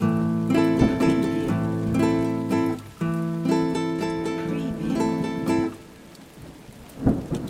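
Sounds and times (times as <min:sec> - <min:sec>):
nylon guitar in A minor playing a broken rhythm in six-eight: 0:00.0 - 0:06.2.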